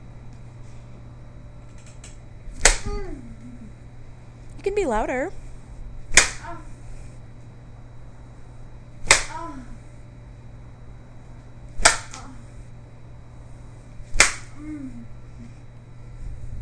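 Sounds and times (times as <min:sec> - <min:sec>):
faint steady hum: 0:00.0 - 0:16.6
thuddy slaps with a red spanking implement: 0:02.6 - 0:03.1, 0:06.1 - 0:06.5, 0:09.0 - 0:09.5, 0:11.8 - 0:12.3, 0:14.1 - 0:14.6
speech: 0:04.6 - 0:05.4.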